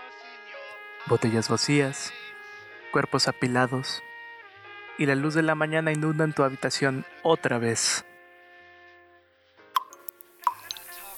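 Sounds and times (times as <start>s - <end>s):
speech: 1.0s - 2.3s, 2.9s - 4.1s, 5.0s - 8.1s
aspirin tablets fizzing in water: 9.8s - 11.1s
aspirin tablets plopping into a glass of water: 9.8s - 11.1s.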